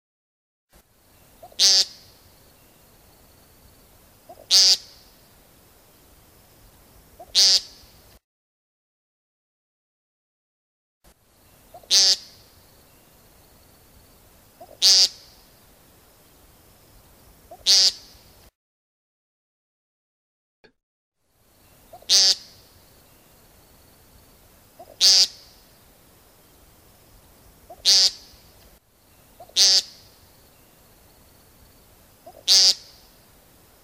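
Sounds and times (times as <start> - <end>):
American Woodcock peent call: 1.2 - 2.8, 4.2 - 5.2, 7.1 - 7.9, 11.4 - 13.1, 14.5 - 15.5, 17.3 - 18.3, 21.6 - 23.5, 24.7 - 25.7, 27.5 - 30.9, 32.2 - 33.2.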